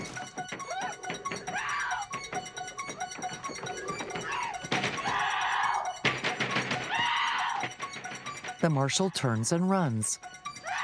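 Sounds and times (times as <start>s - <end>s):
banging on a glass door: 0.0s - 8.6s
speech: 8.6s - 10.4s.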